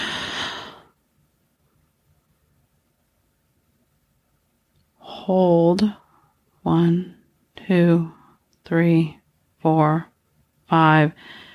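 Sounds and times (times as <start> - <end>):
deep breath drawn in during a guided breathing exercise: 0.0 - 1.0, 11.2 - 11.5
speech: 5.3 - 6.0, 6.6 - 10.1, 10.7 - 11.5.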